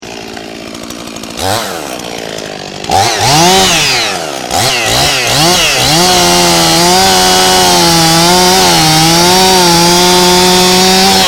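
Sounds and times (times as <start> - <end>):
power saw: 0.0 - 11.2.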